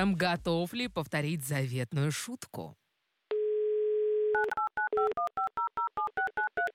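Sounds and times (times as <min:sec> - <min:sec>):
speech: 0:00.0 - 0:02.8, 0:05.0 - 0:05.4
telephone dial tone: 0:03.3 - 0:06.7.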